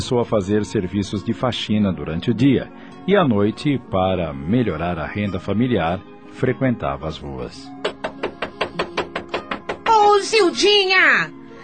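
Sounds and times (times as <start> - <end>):
speech: 0.0 - 7.8, 10.2 - 11.4
rapid steady knocking on a door: 7.8 - 10.2.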